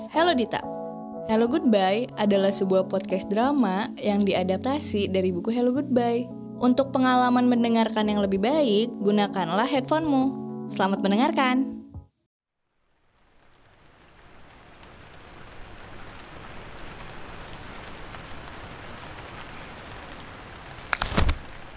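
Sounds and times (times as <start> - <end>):
speech: 0.1 - 11.8
steady dense rain falling: 12.8 - 21.7.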